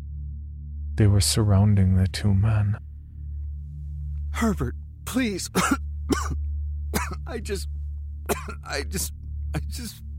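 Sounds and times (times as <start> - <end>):
speech: 1.0 - 2.9, 4.4 - 6.4, 7.0 - 7.7, 8.4 - 10.0
person coughing harshly: 5.5 - 7.6, 8.3 - 10.0.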